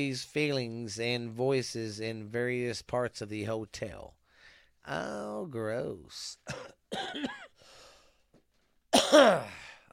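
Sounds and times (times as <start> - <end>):
speech: 0.0 - 4.2, 4.8 - 7.5, 9.1 - 9.9
short raspy breath: 4.2 - 4.8, 7.6 - 8.3
harsh coughs: 6.4 - 7.6, 8.9 - 9.8.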